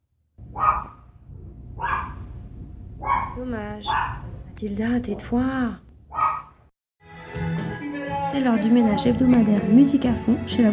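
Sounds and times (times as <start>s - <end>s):
dog barking: 0.4s - 6.7s
low hum: 0.4s - 6.7s
speech: 3.4s - 5.8s, 8.3s - 10.7s.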